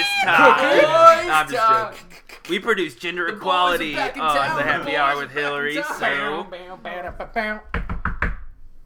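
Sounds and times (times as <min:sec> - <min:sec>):
laughter: 0:00.0 - 0:07.6
speech: 0:00.2 - 0:07.9
firm knocking on a door: 0:07.1 - 0:08.6.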